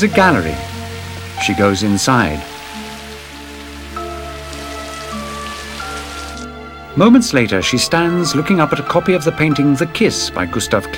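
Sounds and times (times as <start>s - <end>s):
speech: 0.0s - 0.7s, 1.4s - 2.5s, 7.0s - 10.9s
heavy rain pouring down: 0.0s - 7.3s.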